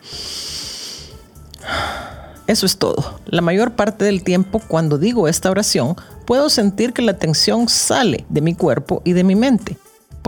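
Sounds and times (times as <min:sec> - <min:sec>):
deep calming breath taken in a stressful moment: 0:00.0 - 0:02.5
speech: 0:02.5 - 0:09.8.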